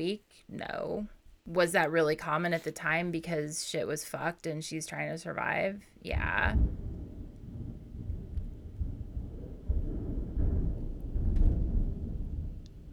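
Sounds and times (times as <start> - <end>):
speech: 0.0 - 6.8
deep thunder rumbling: 6.1 - 12.9.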